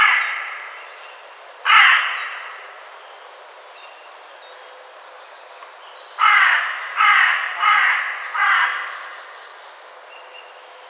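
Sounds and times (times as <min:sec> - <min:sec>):
Carrion crow Corvus corone cawing: 0:00.0 - 0:00.9, 0:01.6 - 0:02.8, 0:06.2 - 0:09.5.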